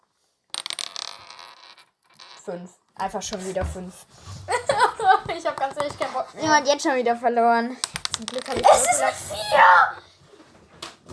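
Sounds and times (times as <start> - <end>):
dice clattering and rolling across a hard tabletop: 0.5 - 2.6, 4.7 - 6.2, 7.8 - 9.0
speech: 2.4 - 4.3, 5.3 - 10.0
laughter: 4.5 - 5.3.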